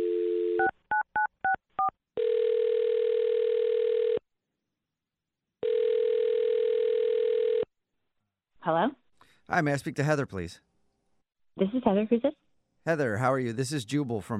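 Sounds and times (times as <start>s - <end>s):
telephone dial tone: 0.0s - 4.2s, 5.6s - 7.7s
speech: 8.7s - 10.7s, 11.6s - 14.3s.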